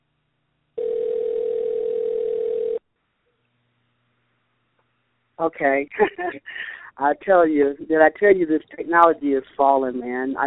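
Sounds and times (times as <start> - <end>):
telephone dial tone while calling someone back: 0.8 - 2.8
speech: 5.4 - 10.4.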